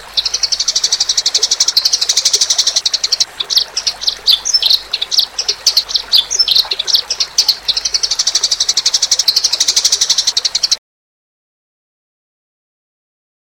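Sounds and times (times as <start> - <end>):
Eurasian tree sparrow fast high chirping: 0.0 - 10.8.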